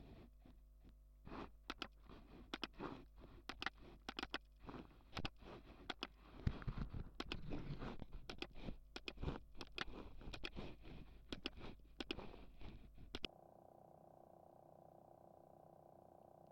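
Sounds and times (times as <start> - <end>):
computer mouse clicks: 1.6 - 13.3.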